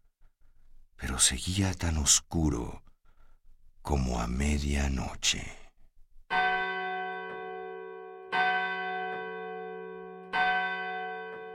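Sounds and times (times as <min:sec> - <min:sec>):
speech: 0:01.0 - 0:02.8, 0:03.9 - 0:05.6
large bell tolling deeply with a long shimmering decay: 0:06.3 - 0:11.5.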